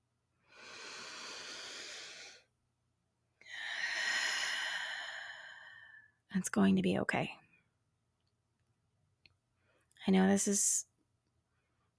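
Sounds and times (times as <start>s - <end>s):
deep breath: 0.4s - 2.5s, 3.4s - 6.2s
speech: 6.3s - 7.4s, 10.1s - 10.9s.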